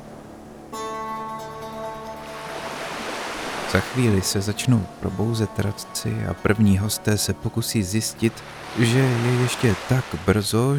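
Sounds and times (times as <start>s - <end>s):
sea waves washing onto a sandy beach: 2.2s - 6.3s, 8.1s - 10.7s
speech: 3.7s - 10.7s.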